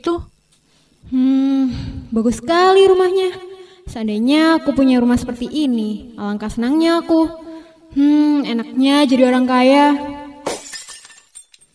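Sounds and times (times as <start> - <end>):
speech: 2.1 - 10.1
flower vase shattering in a house: 10.4 - 11.7
tinkling vase fragments settling: 10.6 - 11.7.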